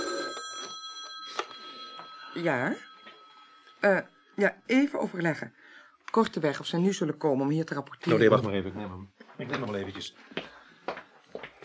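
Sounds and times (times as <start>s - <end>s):
telephone ringing with a bright electronic tone: 0.0s - 4.9s
speech: 2.4s - 2.9s, 3.8s - 11.0s.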